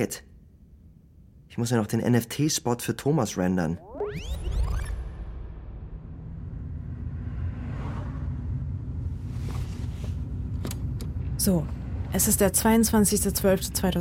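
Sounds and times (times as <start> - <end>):
speech: 0.0 - 0.3, 1.6 - 4.5, 11.4 - 13.9
rising whoosh: 3.8 - 10.5
engine rumble and road noise inside a moving car: 6.8 - 13.9.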